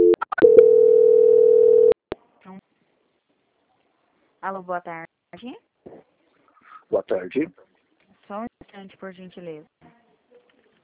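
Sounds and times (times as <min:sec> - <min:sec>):
steady low telephone line tone during call transfer: 0:00.0 - 0:02.0
speech: 0:04.4 - 0:06.1, 0:06.9 - 0:07.6, 0:08.3 - 0:10.0.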